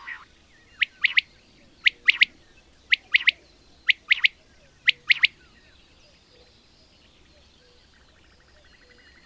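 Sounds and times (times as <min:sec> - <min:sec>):
common quail calling a sharp three-note phrase: 0:00.0 - 0:05.4.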